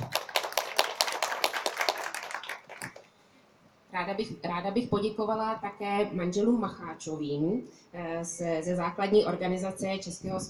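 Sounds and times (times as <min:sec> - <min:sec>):
small crowd applauding: 0:00.0 - 0:03.1
speech: 0:04.0 - 0:10.4.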